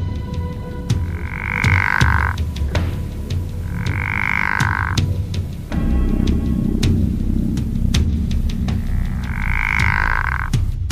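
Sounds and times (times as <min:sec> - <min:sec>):
night ambience: 0:00.2 - 0:10.8
pickerel frog snoring croaks: 0:00.9 - 0:05.7, 0:08.5 - 0:10.7.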